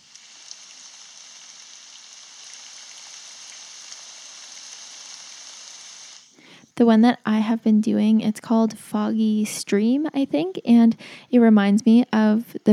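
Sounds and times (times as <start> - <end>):
soft continuous hiss of rain on a surface: 0.0 - 6.4
speech: 6.8 - 12.7.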